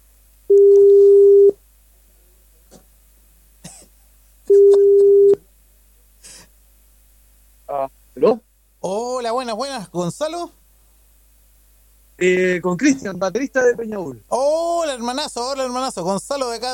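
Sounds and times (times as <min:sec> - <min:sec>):
telephone ringback tone while a call connects: 0:00.5 - 0:01.6, 0:04.5 - 0:05.4
speech: 0:09.5 - 0:10.6, 0:12.2 - 0:16.7.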